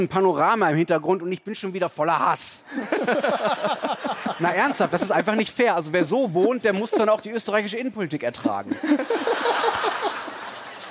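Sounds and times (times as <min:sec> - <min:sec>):
speech: 0:00.0 - 0:10.2
audience laughter: 0:02.8 - 0:05.5, 0:08.5 - 0:10.8.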